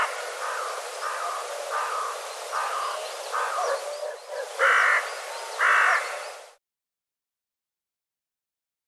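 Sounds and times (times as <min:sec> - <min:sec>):
bird cawing harshly: 0:00.0 - 0:03.7, 0:04.5 - 0:06.2
steady background hiss: 0:00.0 - 0:06.6.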